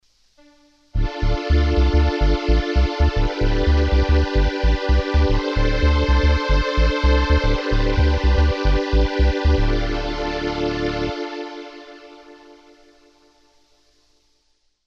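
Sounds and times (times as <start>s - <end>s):
strings: 0.4s - 13.1s
bass: 1.0s - 11.3s.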